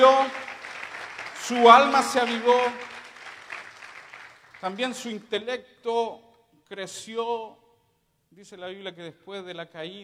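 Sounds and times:
audience applauding during a sermon: 0:00.0 - 0:04.6
speech: 0:01.5 - 0:02.9, 0:04.6 - 0:07.6, 0:08.3 - 0:10.0.

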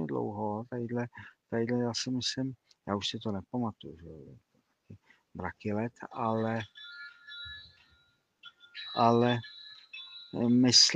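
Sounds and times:
speech: 0:00.2 - 0:07.0, 0:09.0 - 0:09.6, 0:10.3 - 0:10.9
electronic mobile phone ringtone with bright tonal melody: 0:06.2 - 0:10.9.

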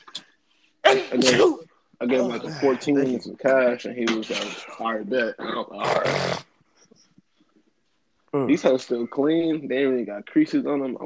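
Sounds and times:
person sneezing: 0:00.8 - 0:02.8
speech: 0:01.1 - 0:06.5, 0:08.3 - 0:11.0.

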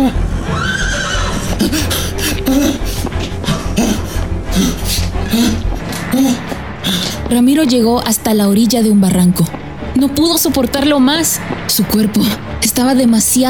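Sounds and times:
horse neighing: 0:00.0 - 0:07.2
steady rumbling noise: 0:00.0 - 0:13.4
speech: 0:07.3 - 0:13.4.

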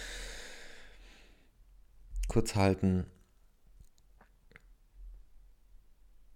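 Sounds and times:
deep inhalation during a breathing exercise: 0:00.0 - 0:01.5
speech: 0:02.3 - 0:03.2.

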